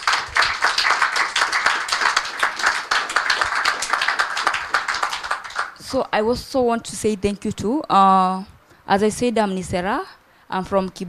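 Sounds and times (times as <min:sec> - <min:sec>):
audience round of applause: 0:00.0 - 0:05.8
speech: 0:05.9 - 0:11.0.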